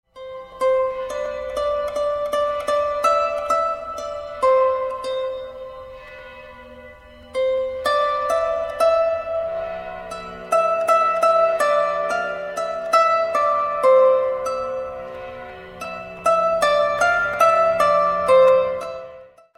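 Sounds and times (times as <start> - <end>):
cithara playing: 0.1 - 19.5.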